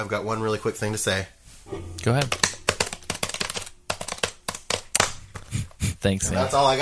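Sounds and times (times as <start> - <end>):
speech: 0.0 - 2.5, 6.0 - 6.7
loud rapid typing on a computer keyboard: 2.2 - 5.8.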